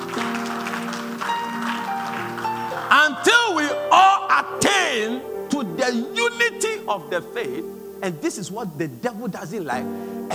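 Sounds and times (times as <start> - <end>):
crowd clapping: 0.0 - 4.6
sustained keyboard or organ tones: 1.3 - 10.3
speech: 3.0 - 3.8, 5.9 - 10.3.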